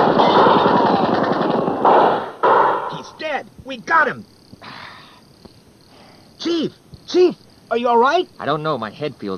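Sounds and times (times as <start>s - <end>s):
rapid machine-gun-like gunfire: 0.0s - 3.0s
speech: 3.4s - 4.4s, 6.4s - 9.3s.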